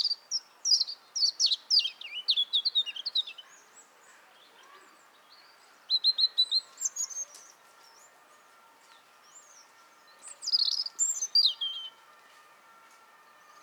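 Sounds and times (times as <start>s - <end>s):
European robin Erithacus rubecula singing high thin warbled phrases: 0.0s - 4.5s, 5.1s - 8.1s, 9.2s - 12.0s.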